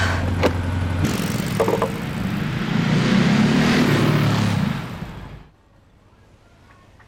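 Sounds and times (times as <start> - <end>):
motorcycle engine revving and pulling away: 0.7 - 5.5.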